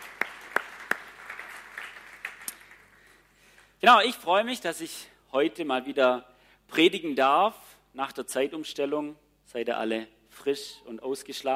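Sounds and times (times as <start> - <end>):
soft audience applause: 0.0 - 3.1
speech: 3.8 - 11.5.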